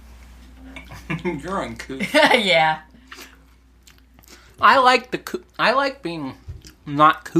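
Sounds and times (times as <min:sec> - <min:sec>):
low steady hum: 0:00.0 - 0:07.3
speech: 0:01.2 - 0:02.9, 0:04.6 - 0:07.3
chewing crunchy wet coleslaw: 0:03.0 - 0:04.6, 0:06.5 - 0:06.9.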